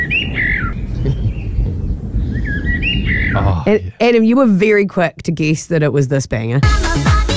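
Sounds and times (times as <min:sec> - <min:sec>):
bird singing melodic whistled phrases: 0:00.0 - 0:03.7
speech: 0:03.7 - 0:07.2.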